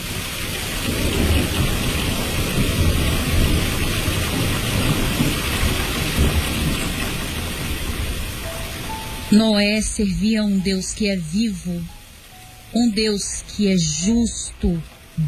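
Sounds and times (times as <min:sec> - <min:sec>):
low rolling thunder: 0:00.0 - 0:08.9
heavy rain: 0:00.0 - 0:15.2
speech: 0:09.3 - 0:12.0, 0:12.7 - 0:15.2.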